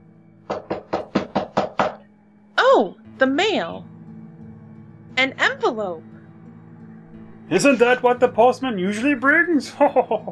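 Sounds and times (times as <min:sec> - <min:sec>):
knocking at the front door: 0:00.5 - 0:02.1
speech: 0:02.8 - 0:03.9, 0:05.2 - 0:06.1, 0:07.5 - 0:10.3
laughter: 0:09.5 - 0:10.3.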